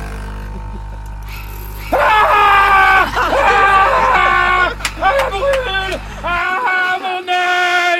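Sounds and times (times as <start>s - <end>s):
laughter: 0.4s - 1.1s, 2.0s - 7.9s
person screaming in pain from scalding drink: 1.9s - 7.1s.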